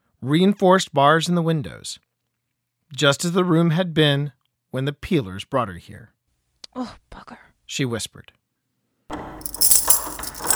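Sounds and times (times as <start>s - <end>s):
speech: 0.2s - 2.0s, 2.9s - 6.2s, 6.8s - 8.4s
bunch of keys jangling: 9.1s - 10.5s.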